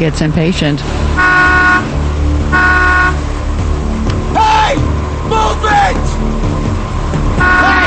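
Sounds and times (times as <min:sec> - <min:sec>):
speech: 0:00.0 - 0:01.5
car engine rumble pulling forward at a toll booth: 0:00.0 - 0:07.8
car horn blasts: 0:01.2 - 0:01.9, 0:02.5 - 0:03.2, 0:07.4 - 0:07.8.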